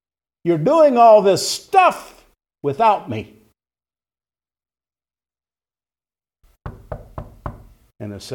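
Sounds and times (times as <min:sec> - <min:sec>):
speech: 0:00.4 - 0:03.4, 0:08.0 - 0:08.3
firm knocks on a wooden door: 0:06.6 - 0:07.9.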